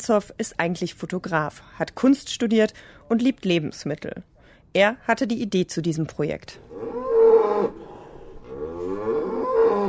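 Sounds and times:
speech: 0:00.0 - 0:07.8
dairy cow mooing mournfully after her calf was taken: 0:06.7 - 0:09.8.

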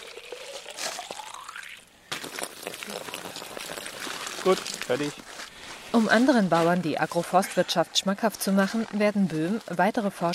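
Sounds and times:
groundwater gurgling into an empty plastic bottle on a farm in Brandenburg: 0:00.0 - 0:04.9
speech: 0:02.9 - 0:03.4, 0:04.4 - 0:10.3.

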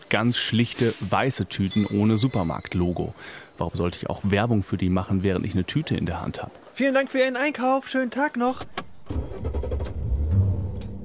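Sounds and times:
speech: 0:00.1 - 0:09.2
car engine running while driving: 0:08.8 - 0:11.0.

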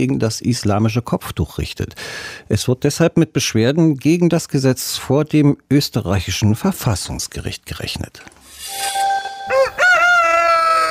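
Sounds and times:
speech: 0:00.0 - 0:09.0
rooster crowing: 0:09.3 - 0:10.8.

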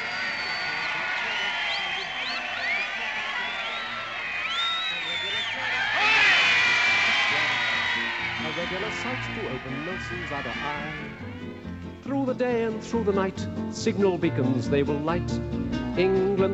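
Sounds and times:
huge crowd of many thousands cheering at a lights switch-on ceremony: 0:00.0 - 0:12.4
speech: 0:08.7 - 0:16.5.

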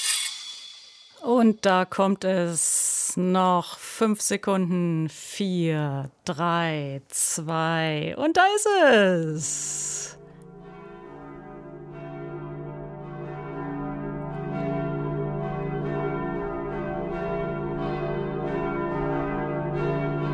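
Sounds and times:
speech: 0:01.2 - 0:10.2
New Year's church bells ringing in overlapping peals: 0:09.6 - 0:20.3.

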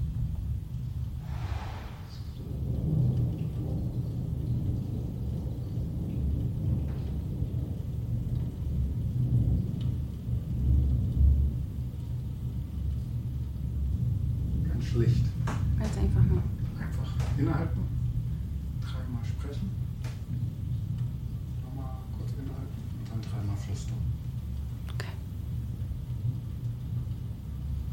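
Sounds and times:
thunderstorm rumbling heard through a closed window: 0:00.0 - 0:27.9
brief brighter swish: 0:01.2 - 0:02.4
speech: 0:17.4 - 0:17.8.

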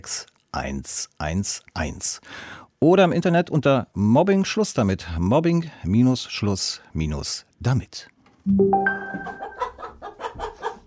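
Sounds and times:
speech: 0:00.0 - 0:09.5
hen cackling while laying an egg: 0:09.2 - 0:10.8.

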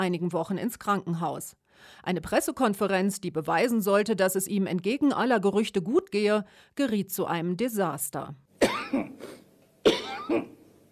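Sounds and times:
speech: 0:00.0 - 0:10.6
heavy coughing fits at a press conference: 0:08.6 - 0:10.6.

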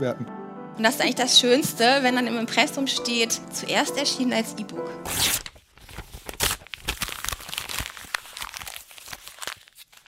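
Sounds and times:
speech: 0:00.0 - 0:05.5
paper being torn and crumpled: 0:05.0 - 0:10.0.

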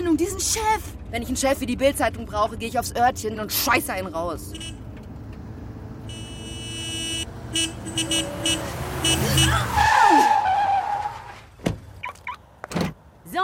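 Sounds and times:
speech: 0:00.2 - 0:04.8, 0:07.5 - 0:10.4
car tires squealing in a long high skid: 0:05.4 - 0:12.6
car engine revving hard and racing past: 0:07.1 - 0:10.0.

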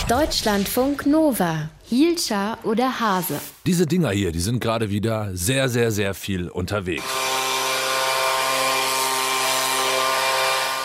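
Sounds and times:
speech: 0:00.1 - 0:07.2
leaf blower running: 0:07.0 - 0:10.8.

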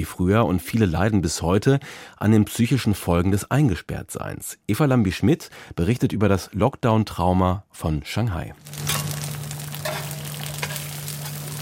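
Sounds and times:
speech: 0:00.0 - 0:08.9
Chinese egg pancakes sizzling on a hot plate: 0:08.6 - 0:11.6.

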